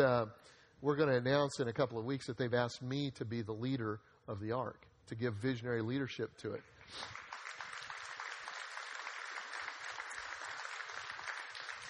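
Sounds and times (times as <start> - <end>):
speech: 0.0 - 7.2
audience applauding: 7.0 - 11.8.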